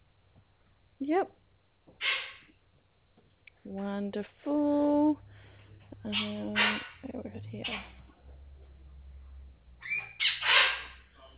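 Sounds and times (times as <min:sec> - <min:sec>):
low hum: 0:00.0 - 0:11.3
speech: 0:01.0 - 0:01.4, 0:03.7 - 0:05.3, 0:06.0 - 0:08.0
pet bird squawking: 0:02.0 - 0:02.5, 0:06.1 - 0:07.0, 0:07.6 - 0:08.0, 0:09.8 - 0:11.3.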